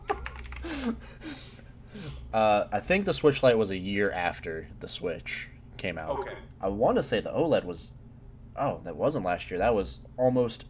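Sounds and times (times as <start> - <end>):
fingers typing on a computer keyboard: 0.0 - 0.7
speech: 0.6 - 8.0, 8.6 - 10.6.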